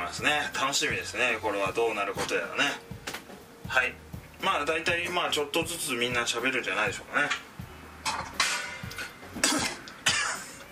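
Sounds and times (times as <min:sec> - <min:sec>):
speech: 0:00.1 - 0:03.1, 0:03.7 - 0:07.5
person coughing after choking while cooking: 0:09.4 - 0:10.6.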